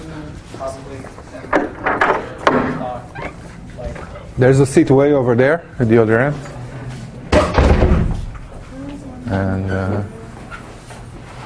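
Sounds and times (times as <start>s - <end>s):
speech: 0.6s - 6.6s, 9.3s - 10.2s
door pushed shut with knocking clunks and latch thud: 7.3s - 8.2s.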